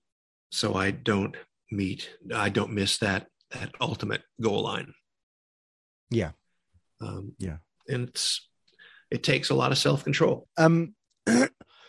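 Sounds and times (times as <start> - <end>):
speech: 0.5 - 5.0, 6.1 - 6.4, 7.0 - 8.5, 9.1 - 11.7
raspy cough: 11.3 - 11.7.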